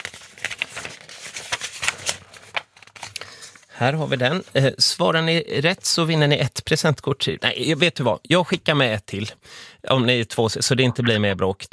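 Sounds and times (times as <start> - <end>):
paper rustling and pages being flipped in a binder: 0.0 - 3.2
speech: 3.8 - 11.7.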